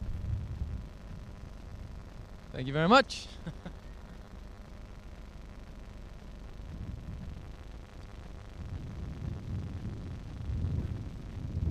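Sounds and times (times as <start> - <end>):
wind blowing: 0.0 - 2.7, 6.2 - 11.6
speech: 2.5 - 3.6.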